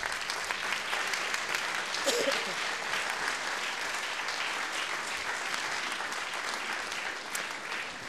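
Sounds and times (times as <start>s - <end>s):
audience applause: 0.0s - 8.0s.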